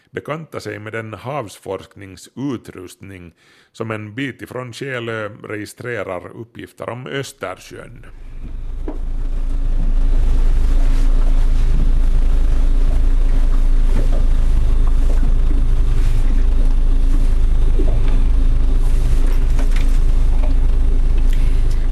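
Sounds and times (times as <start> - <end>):
speech: 0.1 - 8.6
research motorboat engine running by a boathouse on Själö in the Baltic Sea: 7.9 - 21.9.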